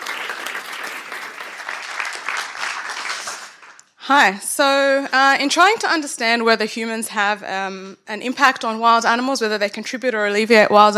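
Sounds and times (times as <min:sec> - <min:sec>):
room full of people clapping: 0:00.0 - 0:03.8
speech: 0:04.0 - 0:10.9.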